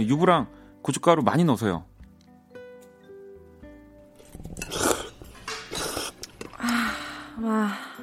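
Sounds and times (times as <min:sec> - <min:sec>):
speech: 0:00.0 - 0:01.9, 0:07.4 - 0:08.0
slurping udon broth from a bowl: 0:04.2 - 0:06.7.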